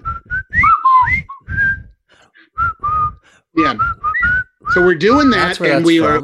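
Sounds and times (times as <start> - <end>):
person whistling a military march: 0.0 - 2.0, 2.6 - 6.1
soft breathy puffs: 1.2 - 4.5
speech: 3.6 - 4.0, 4.7 - 6.2.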